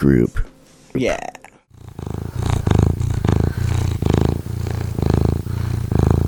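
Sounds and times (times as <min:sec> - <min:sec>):
speech: 0:00.0 - 0:01.4
cat purring: 0:01.7 - 0:06.2.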